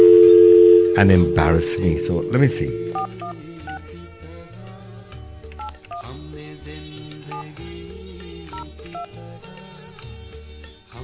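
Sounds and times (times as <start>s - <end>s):
phone number being dialed with short electronic tones: 0.0s - 3.8s
loud dense music bed: 0.7s - 11.0s
speech: 1.0s - 3.4s.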